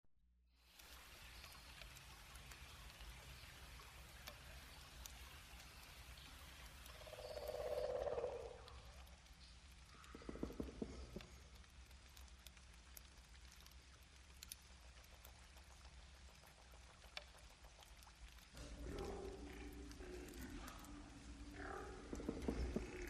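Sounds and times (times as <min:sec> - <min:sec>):
swamp rainforest birds: 0:00.8 - 0:11.6, 0:18.6 - 0:23.0
swamp rainforest mammals: 0:07.0 - 0:08.9, 0:18.6 - 0:23.0.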